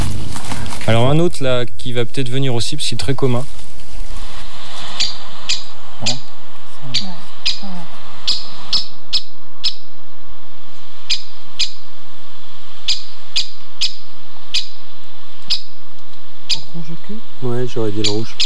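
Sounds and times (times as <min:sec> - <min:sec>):
speech: 0:00.9 - 0:03.6, 0:06.8 - 0:08.4, 0:17.4 - 0:18.4
faint birdsong in woodland: 0:04.8 - 0:18.4
woodpecker call in woodland: 0:04.9 - 0:09.9, 0:11.0 - 0:11.9, 0:12.8 - 0:15.8, 0:16.4 - 0:16.7, 0:18.0 - 0:18.4.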